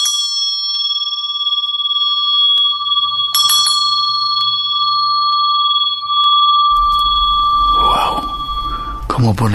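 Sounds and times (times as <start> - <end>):
bell ringing: 0.0 - 9.5
noisy rumbling: 6.0 - 9.5
speech: 9.2 - 9.5.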